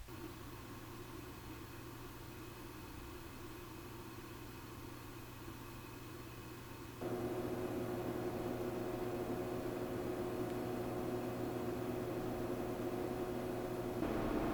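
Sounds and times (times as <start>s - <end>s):
SilverStone GD10 case with Noctua NH-L12 cooler fan at 70 percent load: 0.1s - 14.5s.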